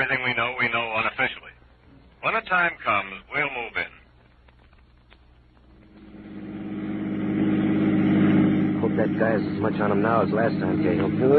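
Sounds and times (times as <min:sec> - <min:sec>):
speech: 0:00.0 - 0:00.8, 0:02.4 - 0:02.9, 0:09.6 - 0:11.3
car engine humming: 0:05.6 - 0:11.3.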